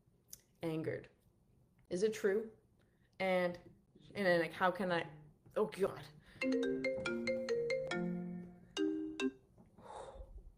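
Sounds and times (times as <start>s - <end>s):
speech: 0.6s - 1.2s, 1.9s - 2.6s, 3.2s - 7.1s
phone ringtone for an incoming call: 6.4s - 9.4s.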